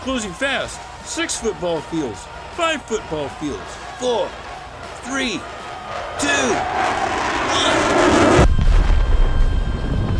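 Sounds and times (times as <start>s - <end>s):
speech: 0.0s - 4.4s, 5.0s - 8.4s
dense low rumble: 5.9s - 10.1s
heavy booming crash of two heads colliding: 5.9s - 10.1s.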